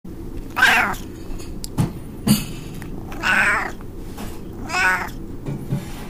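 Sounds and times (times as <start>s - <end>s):
cat meowing: 0.5s - 1.0s, 3.1s - 3.8s, 4.6s - 5.2s.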